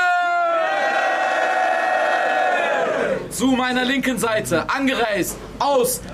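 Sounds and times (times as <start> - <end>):
many voices shouting together: 0.0 - 3.2
large crowd at a battle event roaring and cheering: 0.0 - 3.3
speech: 3.4 - 6.1.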